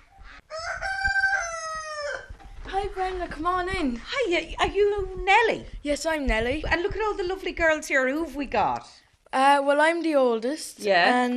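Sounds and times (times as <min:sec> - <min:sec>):
rooster crowing by the front door of a home in County Wexford: 0:00.2 - 0:02.5
speech: 0:02.9 - 0:11.3.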